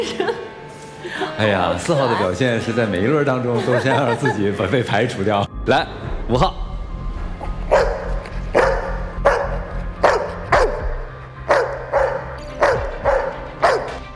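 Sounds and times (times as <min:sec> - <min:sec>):
laughter: 0:00.0 - 0:02.0, 0:03.2 - 0:05.2
speech: 0:00.0 - 0:06.6
low hum: 0:05.5 - 0:11.2
dog barking: 0:07.7 - 0:14.0.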